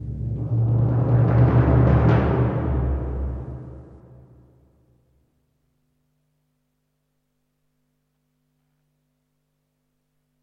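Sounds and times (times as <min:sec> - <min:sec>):
drum roll: 0:00.0 - 0:04.6.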